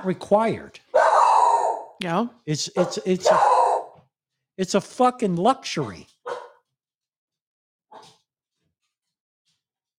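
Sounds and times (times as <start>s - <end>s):
speech: 0.0s - 0.8s, 2.0s - 3.6s, 4.6s - 6.1s
dog barking with huffs and yips: 0.9s - 2.0s, 2.8s - 4.0s, 6.2s - 6.7s, 7.9s - 8.2s.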